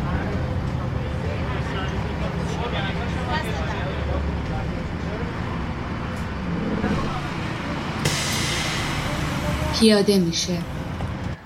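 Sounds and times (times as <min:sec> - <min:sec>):
city bus engine rumbling: 0:00.0 - 0:11.4
road noise: 0:00.0 - 0:11.4
city bus air brakes hissing: 0:07.4 - 0:10.0
speech: 0:09.8 - 0:10.7.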